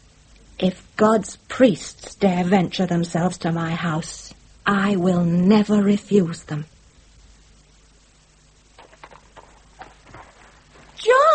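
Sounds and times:
low hum: 0.0 - 11.3
speech: 0.6 - 6.7
horse hooves clip-clopping: 8.8 - 11.0.

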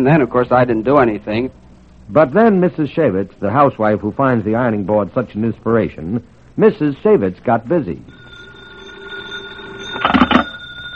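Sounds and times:
speech: 0.0 - 8.2
faint steady hum: 0.0 - 10.9
old telephone bell ringing: 8.1 - 10.9.

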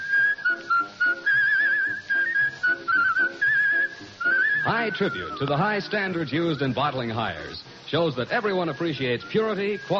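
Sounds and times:
bottling worker whistling a cheerful tune while working: 0.0 - 5.6, 8.7 - 9.9
faint accompaniment: 0.0 - 9.9
speech: 4.7 - 9.9.

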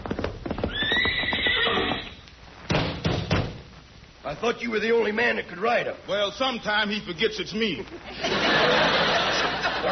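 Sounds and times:
horse hoofbeats clip-clopping: 0.0 - 2.1
male horse letting out a loud drawn-out whinny: 0.6 - 2.2
speech: 4.4 - 9.2
laughter: 7.9 - 9.9.

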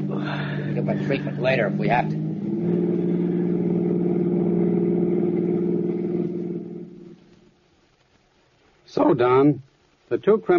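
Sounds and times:
car driving toward a toll bridge across a river: 0.0 - 7.6
speech: 0.8 - 3.1, 9.0 - 10.5.

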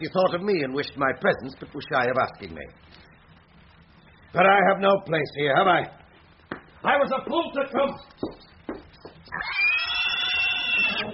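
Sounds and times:
speech: 0.0 - 3.0, 4.3 - 6.0, 6.8 - 8.5
pigs grunting: 9.4 - 11.1.

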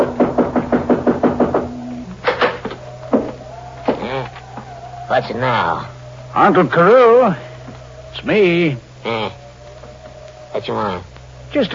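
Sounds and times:
knocking on the wooden door of a house: 0.0 - 4.1
thuds: 0.0 - 4.7
speech: 5.2 - 7.5, 8.1 - 9.4, 10.6 - 11.7.

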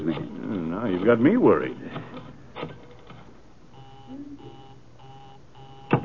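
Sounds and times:
faint noise: 0.0 - 6.0
speech: 0.8 - 1.8
telephone busy signal: 3.8 - 6.0.

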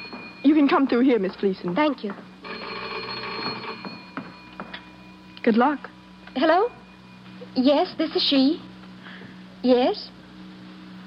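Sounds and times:
telephone bell ringing with a bright electric trill: 0.0 - 1.2, 2.4 - 7.6
speech: 0.4 - 2.3, 5.4 - 6.8, 7.6 - 8.7, 9.6 - 10.2.

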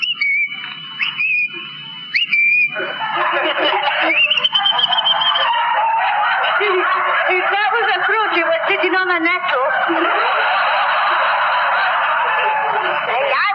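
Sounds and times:
person whistling an imitation of a thrush's song: 0.0 - 2.8, 4.1 - 5.5
laughter: 1.0 - 13.5.

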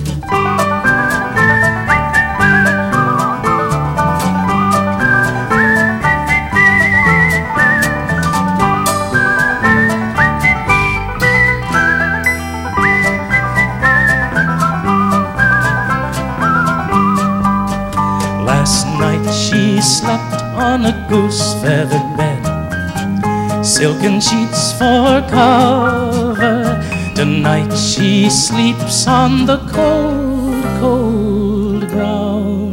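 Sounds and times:
whistled melody in a folk song: 0.0 - 30.8
steady folk song musical accompaniment: 0.0 - 32.7
speech: 23.8 - 26.6, 27.2 - 32.2.

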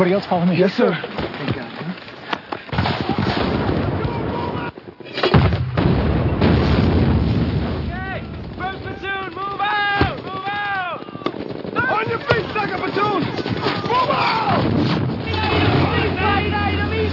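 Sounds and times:
speech: 0.0 - 1.2
mortar and grenade-launcher fire pounding a building: 2.7 - 16.3
people shouting: 7.9 - 17.1.

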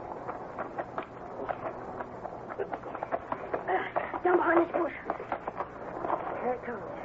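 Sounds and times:
several horses' hooves clip-clopping: 0.0 - 6.9.

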